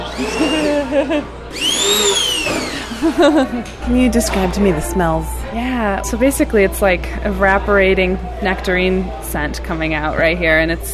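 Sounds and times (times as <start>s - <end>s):
laughter: 0.0s - 1.5s, 2.5s - 4.0s
large immersion blender pureeing peaches and nectarines: 0.0s - 3.3s
speech: 0.2s - 10.9s.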